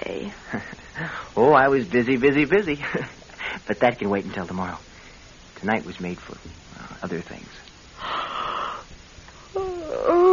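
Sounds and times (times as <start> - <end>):
speech: 0.5 - 0.8, 1.4 - 4.9, 5.6 - 8.2
drawn-out yawn with sighing exhale: 9.5 - 10.3.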